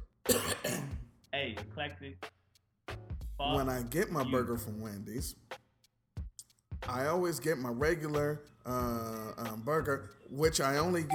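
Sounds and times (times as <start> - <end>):
person coughing: 0.3 - 1.1
throat clearing: 0.3 - 1.1
speech: 1.4 - 2.3, 3.4 - 5.5, 6.9 - 11.1.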